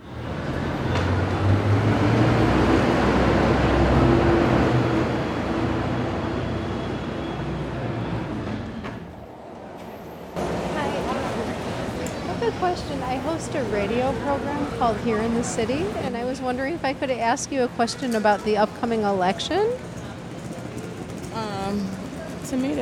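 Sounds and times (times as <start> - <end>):
subway train rumbling through an underground station: 0.0 - 22.8
indistinct voices murmuring in an echoing underground station: 10.4 - 22.8
speech: 12.8 - 19.9, 22.5 - 22.8.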